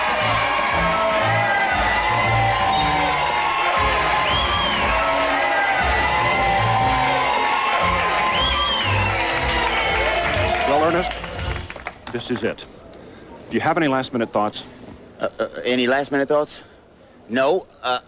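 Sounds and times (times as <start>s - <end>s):
large crowd cheering and whooping: 0.0s - 11.7s
speech: 12.1s - 12.9s, 13.5s - 16.7s, 17.3s - 18.0s.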